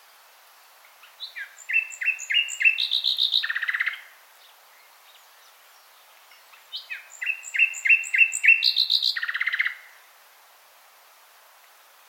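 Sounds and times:
Common nightingale Luscinia megarhynchos singing: 0:00.9 - 0:10.0.

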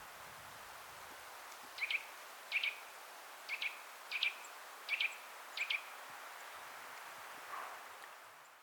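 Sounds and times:
background hiss: 0:00.0 - 0:08.6
Eurasian nuthatch Sitta europaea calling with paired sharp notes: 0:01.8 - 0:02.8, 0:03.5 - 0:05.9.

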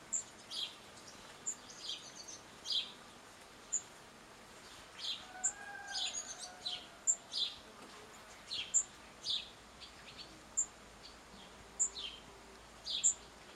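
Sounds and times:
house sparrow (Passer domesticus) giving sharp chirps: 0:00.0 - 0:03.0, 0:03.7 - 0:03.9, 0:04.6 - 0:07.6, 0:08.2 - 0:12.2, 0:12.8 - 0:13.4.

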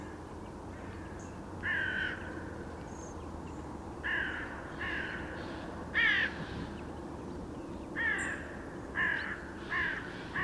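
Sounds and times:
low background noise: 0:00.0 - 0:10.4
carrion crow cawing harshly: 0:01.6 - 0:02.3, 0:04.0 - 0:06.5, 0:09.0 - 0:10.4.

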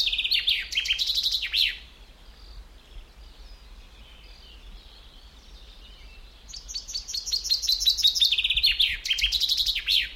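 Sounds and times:
common chaffinch Fringilla coelebs singing: 0:00.0 - 0:10.1.

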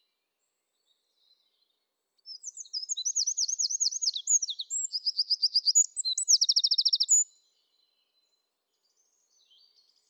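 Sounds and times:
Eurasian wren Troglodytes troglodytes singing: 0:02.4 - 0:07.2.

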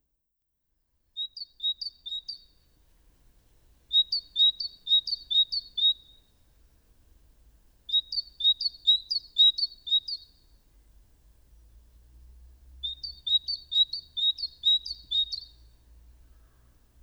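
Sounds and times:
low background noise: 0:00.9 - 0:17.0
great tit Parus major singing see-saw two-note phrases: 0:01.2 - 0:02.6, 0:03.9 - 0:06.3, 0:07.9 - 0:10.4, 0:12.8 - 0:15.6.

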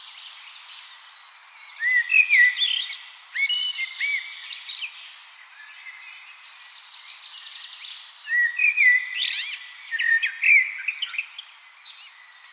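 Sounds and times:
Common blackbird Turdus merula fluty whistled notes with squeaky trills: 0:01.7 - 0:05.0, 0:08.3 - 0:12.4.

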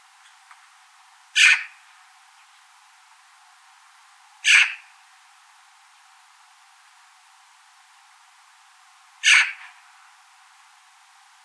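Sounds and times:
Eurasian magpie Pica pica grating call: 0:01.4 - 0:01.8, 0:04.4 - 0:04.9, 0:09.2 - 0:09.7.

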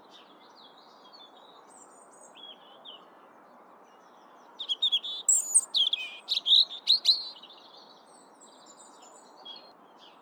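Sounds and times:
European robin Erithacus rubecula singing: 0:04.7 - 0:07.5.

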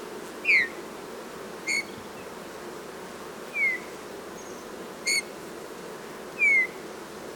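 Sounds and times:
Eurasian bullfinch Pyrrhula pyrrhula giving soft descending piping calls: 0:00.4 - 0:00.8, 0:01.7 - 0:02.0, 0:05.1 - 0:05.3, 0:06.4 - 0:06.7.

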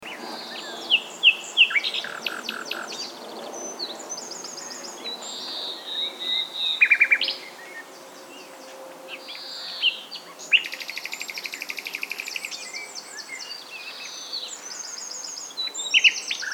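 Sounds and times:
common nightingale Luscinia megarhynchos singing: 0:00.0 - 0:16.5.

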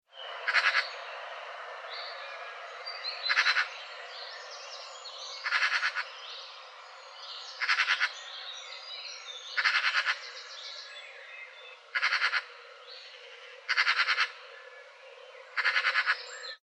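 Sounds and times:
faint steady hiss: 0:00.1 - 0:15.6
Eurasian magpie Pica pica chattering calls: 0:00.5 - 0:00.8, 0:03.3 - 0:03.7, 0:05.4 - 0:06.0, 0:07.6 - 0:08.1, 0:09.6 - 0:10.2, 0:12.0 - 0:12.5, 0:13.7 - 0:14.3, 0:15.6 - 0:16.2.

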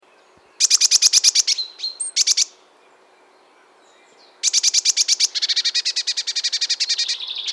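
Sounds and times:
Eurasian blue tit Cyanistes caeruleus churring: 0:00.6 - 0:02.5, 0:04.4 - 0:07.5.

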